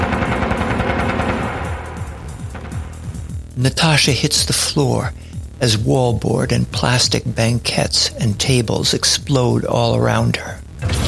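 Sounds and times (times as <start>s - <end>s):
machine gun firing in long sustained bursts: 0.0s - 2.9s
speech: 3.6s - 11.0s.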